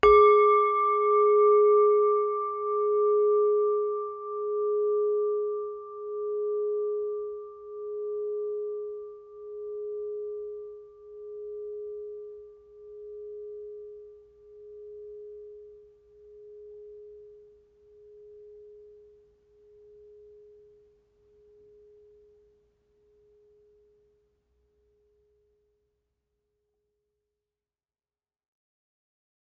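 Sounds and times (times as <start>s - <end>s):
singing bowl ringing: 0.0s - 22.6s.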